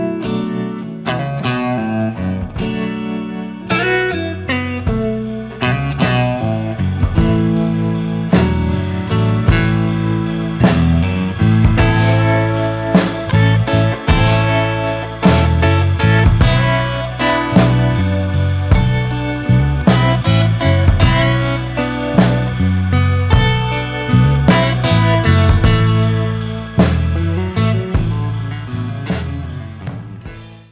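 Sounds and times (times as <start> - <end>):
stereo tremolo effect: 0.2 - 30.5.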